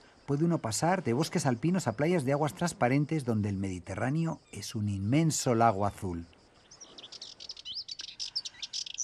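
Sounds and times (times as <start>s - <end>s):
faint hiss: 0.0s - 9.0s
speech: 0.3s - 6.4s
Sardinian warbler singing: 0.4s - 9.0s.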